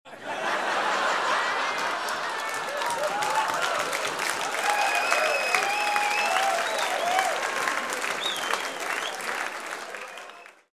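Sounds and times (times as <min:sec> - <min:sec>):
people laughing: 0:00.1 - 0:04.2
applause: 0:01.3 - 0:10.7.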